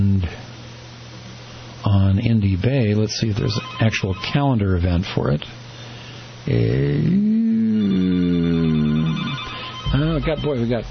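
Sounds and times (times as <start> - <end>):
speech: 1.8 - 5.6, 6.5 - 7.4, 10.2 - 10.8
telephone at a radio station ringing: 3.3 - 4.9, 7.8 - 10.8.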